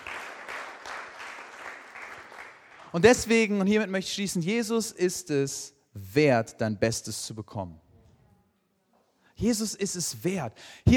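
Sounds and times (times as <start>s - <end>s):
congregation applause at a Christian Sunday service: 0.0s - 3.1s
speech: 2.9s - 7.8s, 9.4s - 10.9s.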